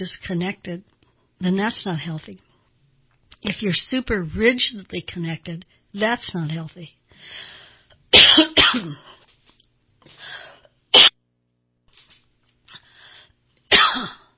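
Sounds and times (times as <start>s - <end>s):
speech: 0.0s - 2.5s, 3.4s - 7.5s, 8.1s - 9.2s
person coughing in a coughing fit: 8.2s - 9.3s, 11.0s - 11.2s, 13.7s - 14.3s.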